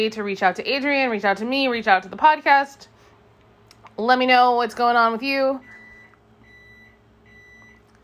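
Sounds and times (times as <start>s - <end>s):
speech: 0.0s - 2.9s, 4.0s - 5.8s
low hum: 0.0s - 8.0s
timer beeping: 5.6s - 7.8s.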